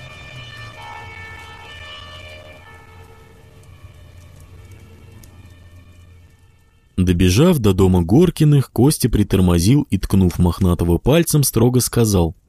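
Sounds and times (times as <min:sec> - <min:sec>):
distant fire engine siren wailing: 0:00.0 - 0:08.5
speech: 0:07.0 - 0:12.4.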